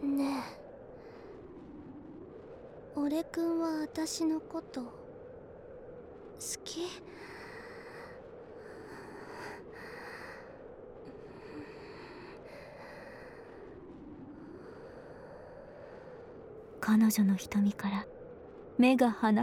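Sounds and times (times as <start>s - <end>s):
speech: 3.1s - 5.0s, 6.4s - 7.3s, 16.9s - 18.2s, 18.8s - 19.4s
young woman breathing heavily and excitedly: 7.1s - 16.4s.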